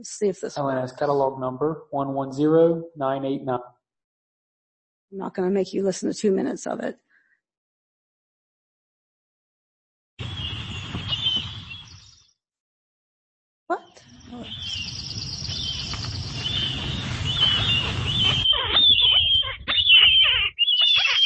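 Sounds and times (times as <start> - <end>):
speech: 0.0 - 3.8, 5.1 - 7.0
Marbled Murrelet keer calls: 14.1 - 21.2.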